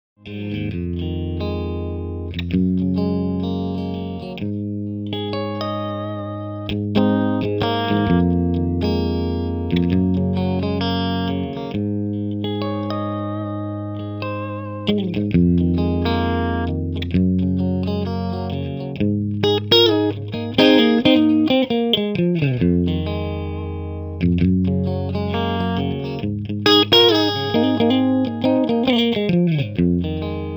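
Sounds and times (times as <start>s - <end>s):
electric guitar: 0.2s - 30.5s.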